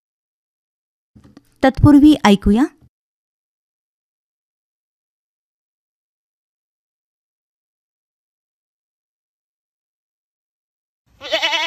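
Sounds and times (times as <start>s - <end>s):
speech: 1.2s - 2.8s
Osmanabadi goat bleating: 11.2s - 11.6s.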